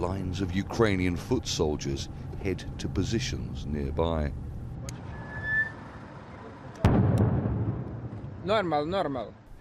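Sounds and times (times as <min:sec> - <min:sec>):
speech: 0:00.0 - 0:04.4, 0:08.4 - 0:09.4
low outdoor rumble: 0:00.0 - 0:09.5
heavy explosion echoing through near-empty streets of Bakhmut, Ukraine: 0:06.8 - 0:08.4.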